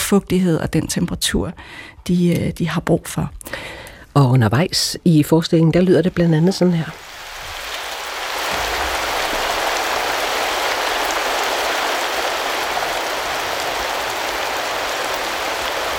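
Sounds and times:
speech: 0.1 - 7.2
steady dense rain: 6.2 - 15.9.

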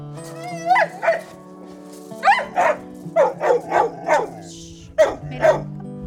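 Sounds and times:
herding dog barking excitedly: 0.5 - 1.4, 2.2 - 5.7.

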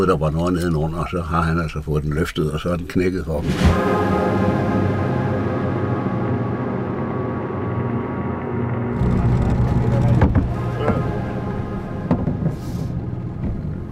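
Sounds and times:
speech: 0.0 - 4.6
small outboard motor dinghy engine landing at the coast: 3.7 - 13.9
knocks: 10.1 - 11.1, 12.0 - 12.6.

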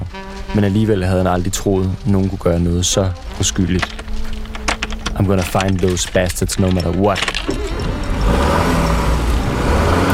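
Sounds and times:
broad road noise: 0.0 - 10.1
car engine rumbling as it pulls away at night: 0.0 - 10.1
speech: 0.6 - 4.0, 5.2 - 7.8.

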